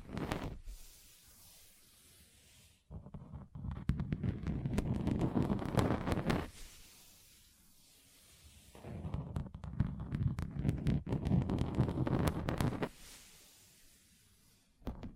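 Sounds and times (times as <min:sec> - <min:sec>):
fingers tapping rapidly on a table: 0:03.0 - 0:06.4, 0:09.0 - 0:12.9.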